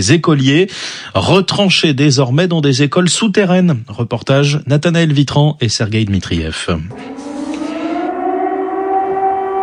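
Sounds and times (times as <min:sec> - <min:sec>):
speech: 0:00.0 - 0:07.3
air raid sirens wailing over a city: 0:06.9 - 0:09.6.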